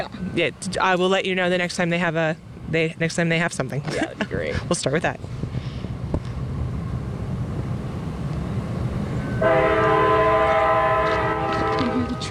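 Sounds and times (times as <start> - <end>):
speech: 0.0 - 5.5
train rumbling along outdoors: 0.0 - 12.3
loud sustained multi-tone train horn blaring: 9.1 - 12.3.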